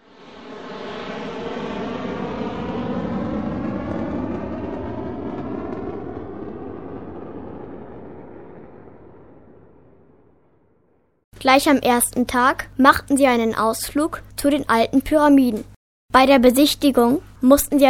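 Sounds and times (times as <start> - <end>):
airplane engine roar: 0.0 - 7.6
speech: 11.4 - 17.8.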